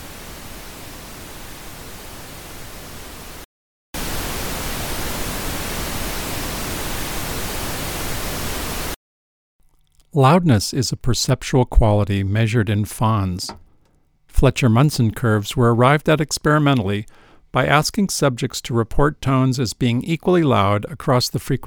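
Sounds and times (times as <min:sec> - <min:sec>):
pink noise test signal: 0:00.0 - 0:03.4, 0:04.0 - 0:09.0
speech: 0:10.1 - 0:13.7, 0:14.4 - 0:21.6.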